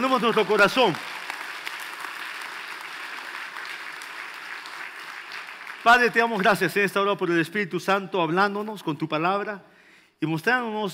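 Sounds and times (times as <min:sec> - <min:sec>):
speech: 0:00.0 - 0:01.2, 0:05.8 - 0:10.9
crowd applauding: 0:00.0 - 0:06.6.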